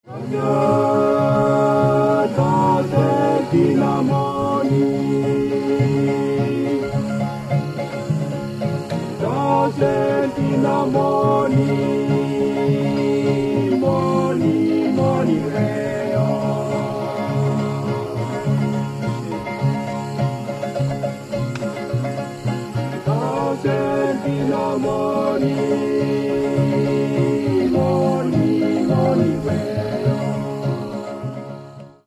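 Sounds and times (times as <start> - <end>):
string: 0.0 - 32.0.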